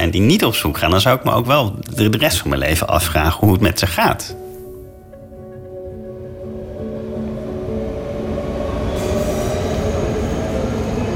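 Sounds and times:
speech: 0.1s - 4.4s
train rumbling along the rails at a station: 5.5s - 11.1s
faint metallic squeals of train wheels: 8.7s - 11.1s.

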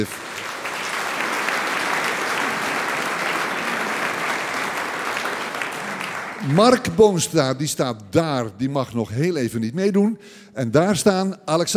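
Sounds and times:
speech: 0.0s - 0.2s, 6.4s - 11.7s
audience applause for trombone ensemble: 0.0s - 7.0s.

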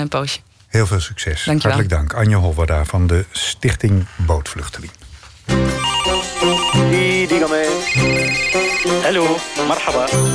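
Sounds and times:
speech: 0.0s - 6.5s, 9.1s - 10.3s
telephone ringtone during a phone call: 5.7s - 9.1s.

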